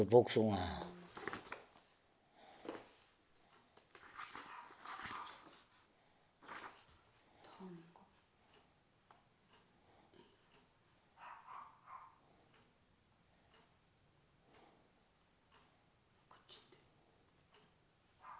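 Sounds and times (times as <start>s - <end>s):
speech: 0.0s - 0.8s
low noise: 0.0s - 18.3s
dog barking: 4.4s - 5.5s, 11.2s - 12.2s, 18.2s - 18.3s.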